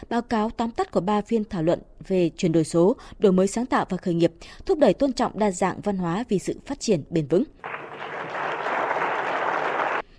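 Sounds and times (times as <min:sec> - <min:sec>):
speech: 0:00.0 - 0:08.4
sustained applause from conference delegates in an auditorium: 0:07.6 - 0:10.0.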